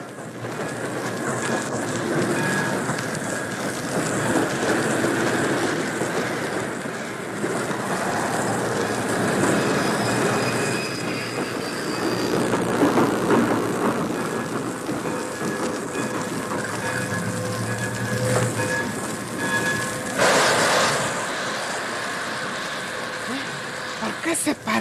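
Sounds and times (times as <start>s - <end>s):
passenger train carriages rumbling and clattering over the rails: 0.0s - 24.8s
thin metallic train wheel squeals: 9.2s - 12.4s, 15.0s - 21.3s.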